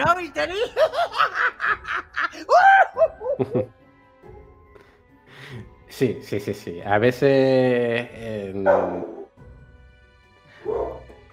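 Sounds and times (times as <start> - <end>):
speech: 0.2 - 1.8, 3.4 - 3.8, 6.0 - 9.2
laughter: 0.6 - 3.7
dog barking: 8.6 - 9.3, 10.6 - 11.2.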